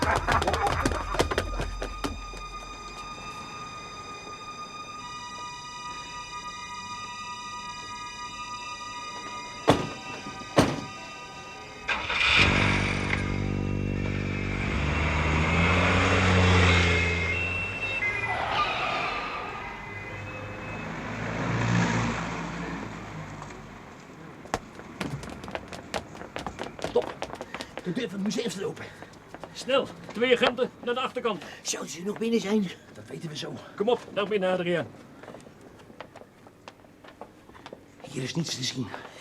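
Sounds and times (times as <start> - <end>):
laughter: 0.0 - 2.0
car doors thudding shut: 9.7 - 10.0, 10.6 - 10.9
car engine turning over, catching and revving: 11.9 - 23.4
speech: 28.0 - 29.0, 29.6 - 35.0, 38.2 - 39.1.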